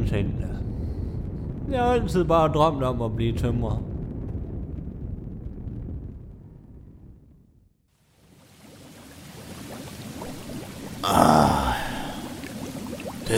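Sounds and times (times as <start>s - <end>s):
speech: 0.1s - 0.7s, 1.7s - 3.9s
water bubbling in a hot tub: 8.1s - 13.3s.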